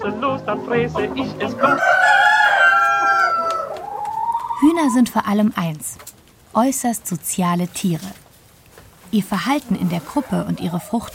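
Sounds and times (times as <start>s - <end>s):
speech: 0.0s - 2.2s, 4.6s - 8.2s, 9.1s - 11.1s
chickens clucking: 0.0s - 5.7s, 9.1s - 11.1s
rooster crowing: 1.5s - 4.8s.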